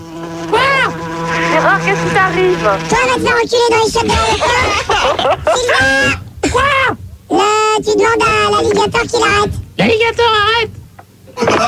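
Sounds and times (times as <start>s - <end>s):
flies buzzing: 0.0s - 6.0s
speech: 1.7s - 10.8s, 11.4s - 11.6s
laughter: 4.0s - 6.7s, 11.4s - 11.6s.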